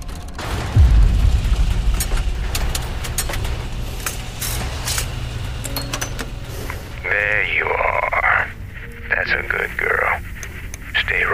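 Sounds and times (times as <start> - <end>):
low steady hum: 0.0 - 11.3
spaceship weapon explosion tearing through hull in space video game: 0.3 - 5.6.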